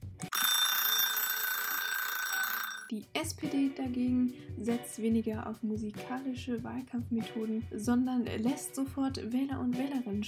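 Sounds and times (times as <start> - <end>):
alarm clock bell ringing: 0.3 - 2.9
speech: 2.9 - 10.2.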